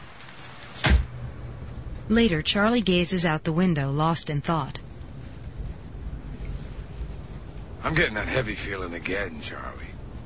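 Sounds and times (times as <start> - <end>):
quiet steady hum: 0.0 - 10.2
limousine door shutting with a dull low thud: 0.8 - 1.1
speech: 2.1 - 4.8, 7.9 - 9.9.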